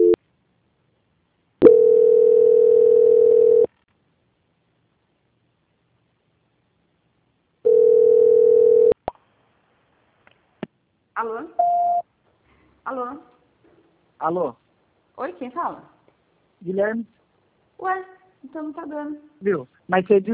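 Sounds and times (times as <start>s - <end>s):
long steady telephone line beeps while a call is being transferred: 1.6s - 3.7s, 7.7s - 9.0s, 11.6s - 12.0s
speech: 12.9s - 13.3s, 14.2s - 14.6s, 15.2s - 15.9s, 16.6s - 17.2s, 17.8s - 20.3s.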